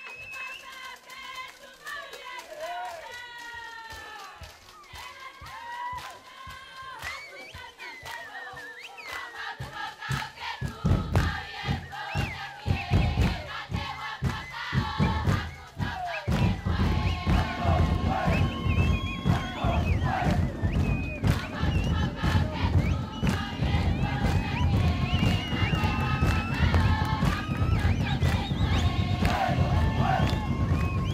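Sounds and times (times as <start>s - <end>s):
group of women singing: 0.4s - 31.1s
men stomping rhythmically while dancing: 3.2s - 31.1s
men chanting: 10.1s - 31.1s.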